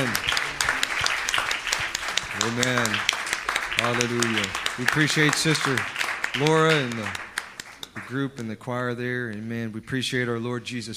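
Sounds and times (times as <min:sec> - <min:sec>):
audience applauding: 0:00.0 - 0:08.5
speech: 0:02.5 - 0:03.2, 0:03.8 - 0:07.3, 0:08.0 - 0:10.9.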